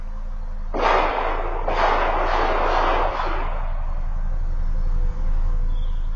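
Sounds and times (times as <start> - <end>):
steady low hum: 0.0 - 6.1
pistol shots with tail: 0.8 - 4.2.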